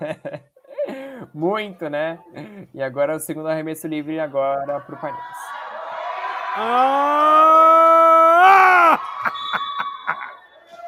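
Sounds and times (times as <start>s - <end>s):
speech: 0.0s - 0.4s, 1.4s - 5.6s, 6.6s - 9.1s
laughter: 4.6s - 10.5s
basketball crowd screaming and shouting during a free throw: 4.7s - 10.8s.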